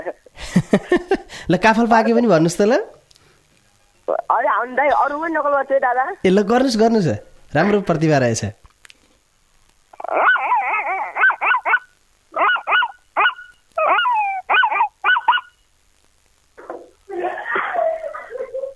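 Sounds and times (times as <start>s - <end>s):
laughter: 0.4s - 1.3s, 17.1s - 18.7s
speech: 0.7s - 3.0s, 4.6s - 8.6s, 10.0s - 10.3s
person imitating a puppy barking and whimpering: 10.0s - 15.5s.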